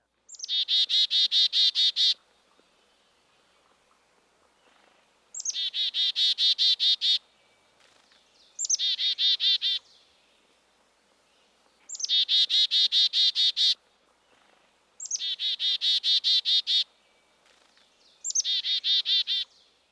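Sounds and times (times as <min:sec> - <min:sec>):
black-capped chickadee calling: 0:00.3 - 0:02.2, 0:03.6 - 0:07.2, 0:08.6 - 0:09.9, 0:11.9 - 0:13.8, 0:15.0 - 0:16.9, 0:18.2 - 0:19.6.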